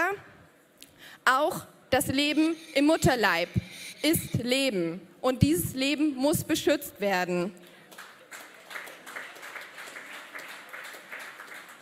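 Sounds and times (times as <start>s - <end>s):
speech: 1.3s - 7.7s
restrained applause from an audience: 7.8s - 11.8s.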